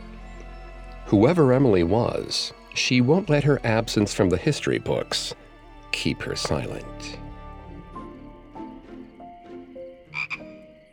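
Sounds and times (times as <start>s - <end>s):
speech: 1.1s - 7.2s
frog croaking: 8.8s - 10.9s.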